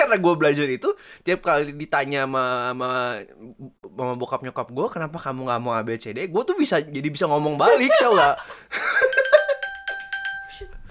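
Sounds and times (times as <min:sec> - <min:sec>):
speech: 0:00.1 - 0:09.2
people laughing: 0:07.6 - 0:09.6
iPhone Find My locating alert chime triggered from a watch: 0:09.0 - 0:10.8.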